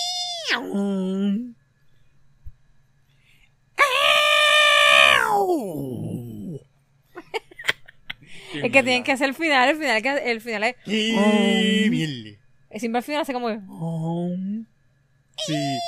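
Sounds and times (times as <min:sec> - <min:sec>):
speech: 0:00.5 - 0:01.5, 0:08.6 - 0:14.6, 0:15.4 - 0:15.8
person imitating a giant movie monster's roar: 0:03.8 - 0:06.6, 0:10.9 - 0:12.2.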